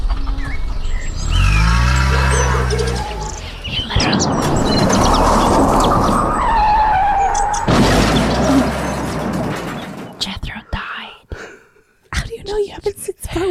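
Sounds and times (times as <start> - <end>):
bird chirps: 0.0 - 7.7
car engine revving as the car drives off: 0.0 - 9.6.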